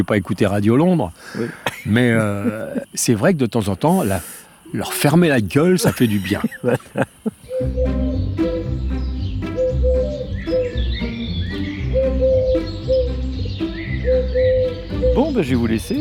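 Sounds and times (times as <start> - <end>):
speech: 0.0 - 8.9, 15.2 - 15.9
other birds chirping and twittering: 0.0 - 15.9
laughter: 1.3 - 2.9, 5.6 - 7.5
Eurasian collared dove cooing: 7.4 - 8.7, 9.6 - 11.1, 11.8 - 13.3, 13.9 - 15.4.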